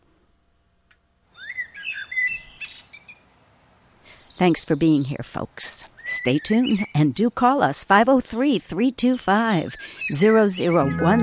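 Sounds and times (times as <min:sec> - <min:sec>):
soft outdoor background: 0:00.0 - 0:11.2
blackbird singing outside window: 0:01.4 - 0:03.2, 0:06.0 - 0:07.4, 0:09.8 - 0:11.2
speech: 0:04.4 - 0:11.2.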